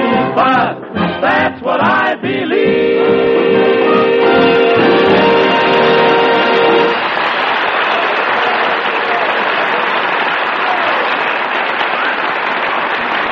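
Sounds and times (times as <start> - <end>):
speech: 0.4 - 2.5
musical chord ringing out: 2.7 - 7.1
loud sustained audience applause: 3.8 - 13.3.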